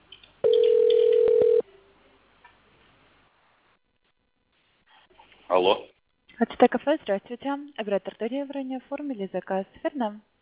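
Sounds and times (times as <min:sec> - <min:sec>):
telephone ringing tone while a call connects: 0:00.4 - 0:01.6
speech: 0:05.6 - 0:10.3.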